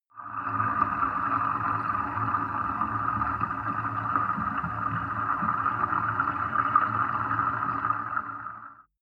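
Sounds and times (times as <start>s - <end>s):
bathtub filling recorded underwater: 0.0s - 9.0s.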